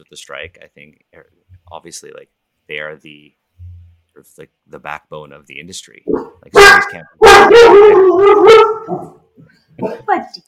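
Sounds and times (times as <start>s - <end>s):
speech: 0.0s - 3.4s, 4.2s - 10.4s
dog yowling and barking: 6.1s - 9.2s.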